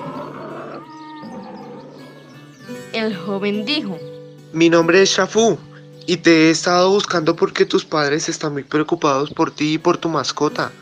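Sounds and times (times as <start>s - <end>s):
animal roaring and growling: 0.0s - 2.5s
speech: 2.9s - 10.7s.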